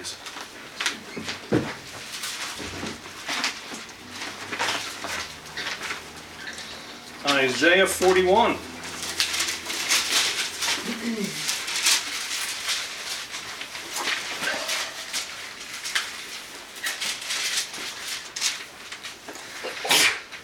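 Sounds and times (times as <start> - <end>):
rustling: 0.0 - 19.7
speech: 7.4 - 8.7
sneeze: 19.6 - 20.3.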